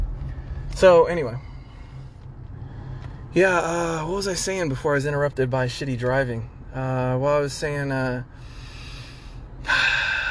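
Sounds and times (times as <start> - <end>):
speech: 0.7 - 1.5, 3.3 - 8.5
person taking a sudden sharp breath in: 8.4 - 10.3.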